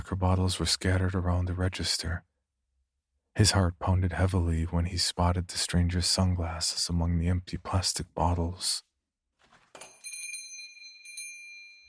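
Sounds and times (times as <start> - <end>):
speech: 0.1 - 2.3, 3.4 - 8.9
shop door chime ringing: 9.8 - 11.8.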